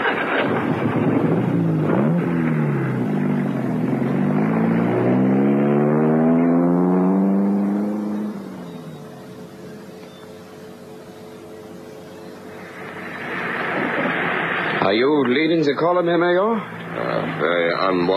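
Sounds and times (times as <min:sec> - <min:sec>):
car engine droning while driving: 0:00.0 - 0:18.1
speech: 0:14.9 - 0:18.1.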